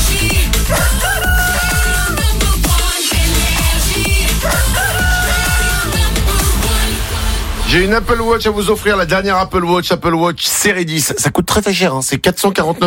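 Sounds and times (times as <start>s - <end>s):
loud driving jingle music with a pulsing bass beat: 0.0s - 10.3s
rooster crowing in a morning radio jingle: 0.7s - 2.2s, 4.4s - 6.1s
speech: 7.7s - 12.8s.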